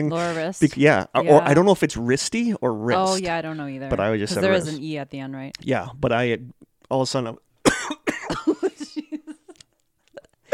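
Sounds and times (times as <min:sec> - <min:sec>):
speech: 0:00.0 - 0:07.5
harsh coughing fit: 0:07.7 - 0:08.9.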